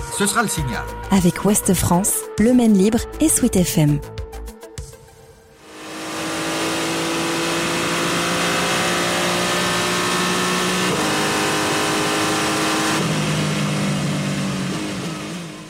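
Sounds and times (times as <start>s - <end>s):
speech: 0.2s - 4.2s
race car engine roaring on the 24 Hours of Le Mans circuit: 5.6s - 15.6s.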